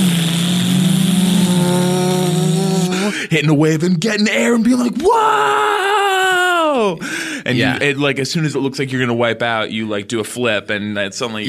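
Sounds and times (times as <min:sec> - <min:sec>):
voice imitating a Sea-Doo personal watercraft engine revving: 0:00.0 - 0:03.3
speech: 0:03.3 - 0:05.9, 0:06.8 - 0:11.4.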